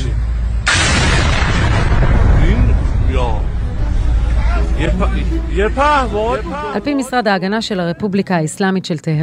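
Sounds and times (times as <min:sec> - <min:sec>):
drone attack explosion at night in central Isfahan Iran: 0:00.6 - 0:04.2
excited voices shouting and talking: 0:04.0 - 0:08.3
speech: 0:05.0 - 0:09.2.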